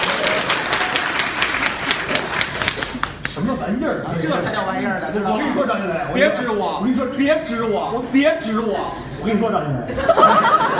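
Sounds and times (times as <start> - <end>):
dense audience applause: 0.0 - 3.2
speech: 3.4 - 10.7
laughter: 9.9 - 10.7.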